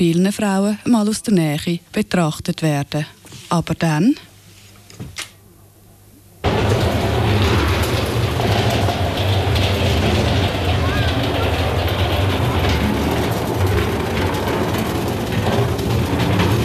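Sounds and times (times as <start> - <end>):
speech: 0.0 - 4.3
train rumbling into station: 6.4 - 16.6.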